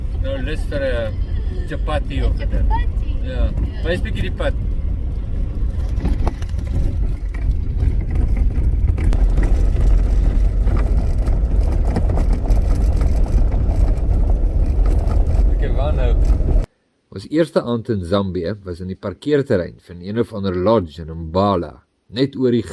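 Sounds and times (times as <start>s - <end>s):
car engine and tyres rumbling while driving along a road in Zambia: 0.0s - 16.8s
speech: 0.3s - 4.7s, 15.8s - 16.6s, 17.2s - 22.7s.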